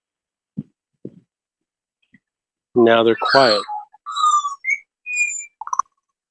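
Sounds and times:
speech: 0:02.8 - 0:03.7
small birds singing: 0:02.9 - 0:06.0.

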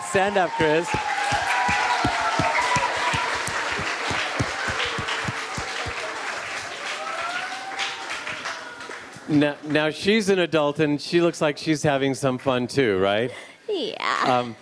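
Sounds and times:
cheers: 0:00.0 - 0:09.4
crowd applauding: 0:00.0 - 0:09.8
speech: 0:00.1 - 0:01.1, 0:09.3 - 0:14.6.

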